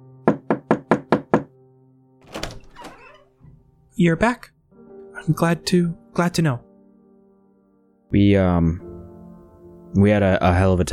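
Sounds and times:
knocking on a wooden door: 0:00.3 - 0:01.5
speech: 0:04.0 - 0:04.6, 0:05.2 - 0:06.7, 0:08.1 - 0:08.9, 0:09.9 - 0:10.9.

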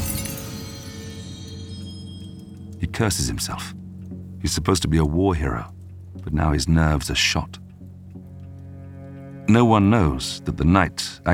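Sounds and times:
glass smashing on a stone hearth: 0:00.0 - 0:02.6
speech: 0:02.8 - 0:03.8, 0:04.4 - 0:07.6, 0:09.5 - 0:11.3.

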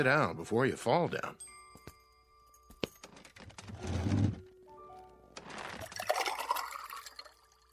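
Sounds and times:
speech: 0:00.0 - 0:01.5
water being poured: 0:05.8 - 0:07.7.

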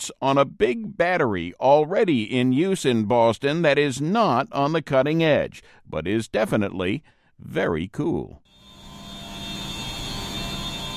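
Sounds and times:
speech: 0:00.0 - 0:08.5
high-pitched hum of pumps and boilers in a building basement: 0:08.5 - 0:10.9.

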